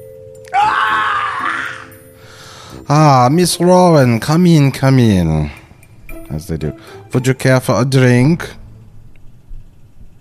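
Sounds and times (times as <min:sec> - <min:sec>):
faint steady hum: 0:00.0 - 0:10.1
performed scream of pain: 0:00.5 - 0:02.0
speech: 0:02.9 - 0:05.6, 0:06.3 - 0:08.6.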